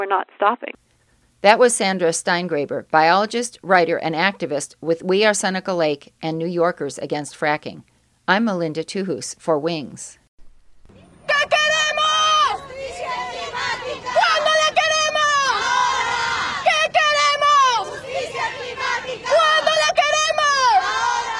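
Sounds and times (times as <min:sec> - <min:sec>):
speech: 0:00.0 - 0:00.8, 0:01.4 - 0:10.2
large crowd of protesters chanting call-and-response: 0:11.0 - 0:21.3.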